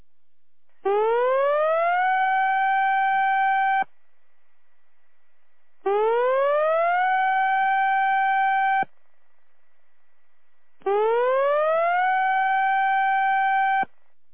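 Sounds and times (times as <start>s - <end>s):
tsunami warning siren during a drill: 0.8s - 3.9s, 5.8s - 8.9s, 10.8s - 13.9s.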